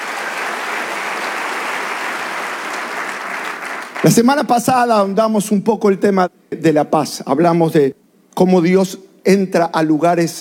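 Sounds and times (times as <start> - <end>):
church congregation applauding: 0.0 - 4.6
speech: 4.0 - 10.4.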